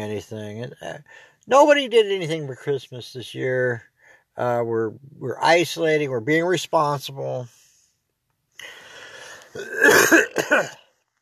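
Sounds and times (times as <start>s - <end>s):
speech: 0.0s - 7.6s, 9.5s - 10.8s
person coughing: 9.6s - 10.9s.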